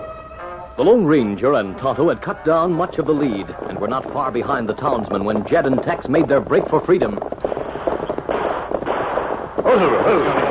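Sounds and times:
speech: 0.8 - 7.5, 9.7 - 10.5
dense volley of gunfire just over a ridge: 7.4 - 10.5.

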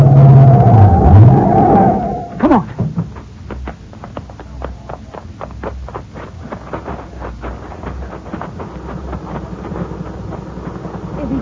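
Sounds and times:
car engine revving: 0.0 - 2.4, 7.0 - 11.4.

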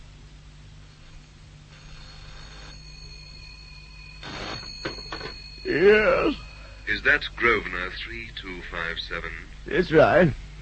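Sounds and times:
faint steady tone: 0.0 - 10.5
low hum: 0.0 - 10.5
old-fashioned telephone bell ringing in rattling bursts: 1.7 - 8.1
speech: 5.7 - 10.4.

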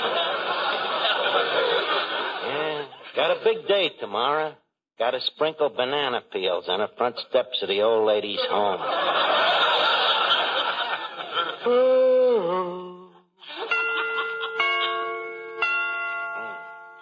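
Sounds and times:
laughter: 0.0 - 3.6, 8.4 - 11.8, 13.4 - 15.1
speech: 3.2 - 9.9, 11.6 - 12.0
clock chimes striking the hour: 13.7 - 17.0.

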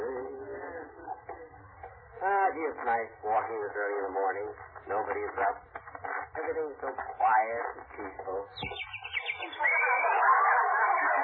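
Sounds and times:
speech: 2.5 - 5.8, 6.4 - 9.0
sparrow chirping on an early-morning walk: 8.5 - 10.0
laughter: 9.4 - 11.2.

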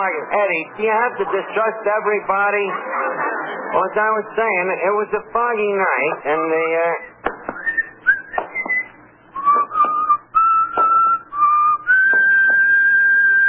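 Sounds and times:
speech: 0.0 - 7.1
man whistling a song: 7.6 - 13.4.

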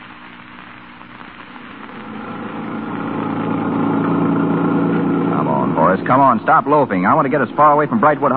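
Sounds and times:
car engine running: 1.8 - 8.3
speech: 6.1 - 8.3.

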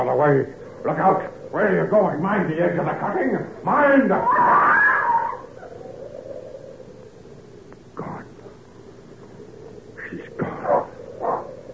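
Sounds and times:
speech: 0.0 - 4.9
steady low rumble: 0.0 - 11.7
dog giving a short high yelp: 4.2 - 5.8, 10.6 - 11.6
dog barking: 10.4 - 11.6.

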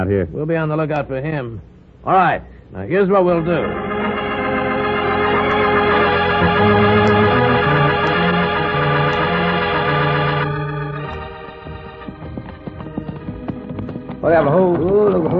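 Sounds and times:
speech: 0.0 - 3.9, 14.2 - 15.3
loud orchestral music: 3.3 - 14.7
horses' hooves clip-clopping at a trot: 11.2 - 15.3.

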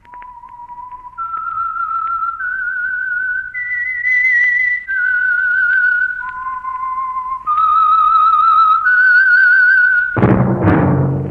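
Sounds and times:
lone whistler whistling a slow eerie theme tune: 0.0 - 10.2
brief burst of noise: 10.2 - 11.2.

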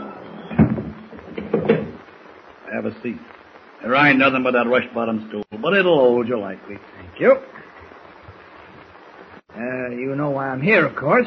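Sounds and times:
door closing clunk: 0.5 - 2.0
speech: 1.5 - 1.9, 2.8 - 7.6, 9.6 - 11.2.

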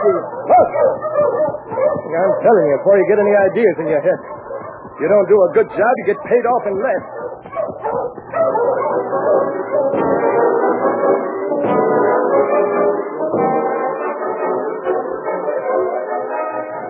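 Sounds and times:
sled dogs yelping and whimpering: 0.0 - 5.1, 5.7 - 13.1
pack of sled dogs barking and yipping: 0.0 - 16.8
speech: 2.2 - 4.3, 5.0 - 7.2.

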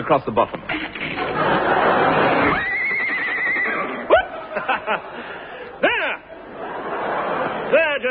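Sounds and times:
speech: 0.0 - 0.8, 7.7 - 8.0
laughter: 1.1 - 2.7, 3.8 - 8.0
horse neighing: 2.4 - 4.2.

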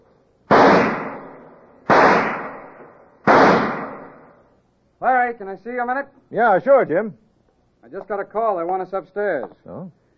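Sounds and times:
pistol shots at an indoor pistol range in an office building basement: 0.5 - 4.4
speech: 5.0 - 7.2, 7.8 - 10.0.

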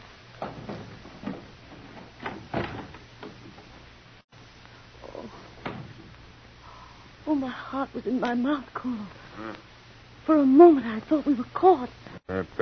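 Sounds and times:
speech: 0.4 - 1.0, 7.3 - 9.7, 10.3 - 12.6
door pushed open: 0.4 - 3.8
knocks: 0.4 - 3.9.

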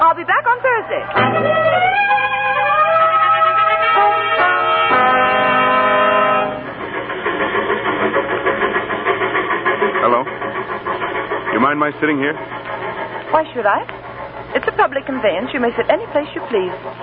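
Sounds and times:
passenger train wheels rumbling and clattering on the rails: 0.0 - 17.0
speech: 0.3 - 2.1, 11.8 - 12.7, 13.4 - 14.0, 14.7 - 17.0
passenger train horn blaring a multi-toned chord: 0.7 - 6.8.

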